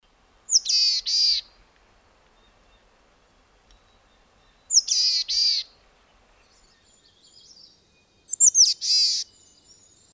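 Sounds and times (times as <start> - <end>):
buzzy high-pitched bird calls: 0.5 - 1.4, 4.7 - 5.7, 6.6 - 10.1.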